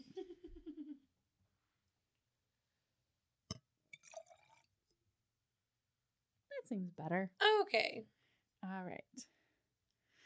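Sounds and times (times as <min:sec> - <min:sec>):
previously frozen drink poured from a twist-open bottle into drinking glasses: 0:03.9 - 0:04.8
speech: 0:06.6 - 0:09.4.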